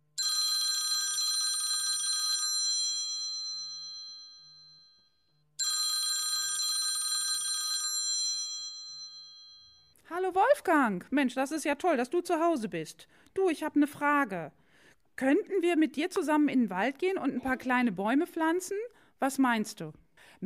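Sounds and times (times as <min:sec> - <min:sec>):
telephone ringing while placing a call: 0:00.2 - 0:09.9
speech: 0:10.1 - 0:14.6, 0:15.2 - 0:20.4.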